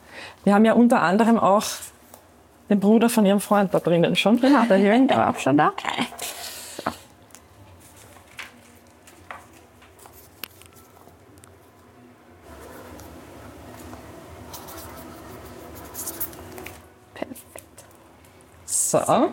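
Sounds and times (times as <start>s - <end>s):
speech: 0.4s - 1.9s, 2.7s - 6.2s, 19.0s - 19.3s
pen scratching across paper writing an entry in a book: 14.5s - 16.4s.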